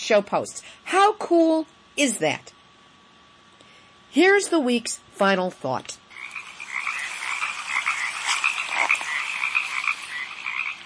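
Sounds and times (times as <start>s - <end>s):
speech: 0.1s - 2.6s, 4.1s - 6.0s
frogs croaking at a stream: 6.1s - 10.8s.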